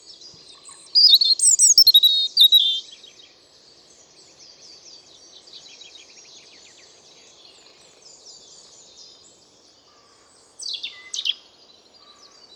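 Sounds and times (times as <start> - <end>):
European robin Erithacus rubecula singing: 0.8 - 2.9.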